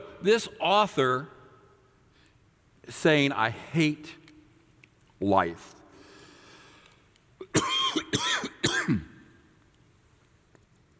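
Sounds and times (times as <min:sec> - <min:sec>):
speech: 0:00.2 - 0:01.4, 0:02.9 - 0:04.2, 0:05.2 - 0:05.8
person clearing a tickle in the throat: 0:07.4 - 0:09.1.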